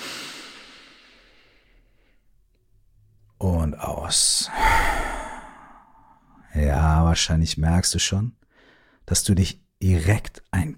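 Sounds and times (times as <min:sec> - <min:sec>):
deep breath in during a guided relaxation exercise: 0:00.0 - 0:02.3, 0:04.5 - 0:06.4, 0:08.5 - 0:09.0
speech: 0:03.7 - 0:04.6, 0:06.6 - 0:08.4, 0:09.1 - 0:10.7.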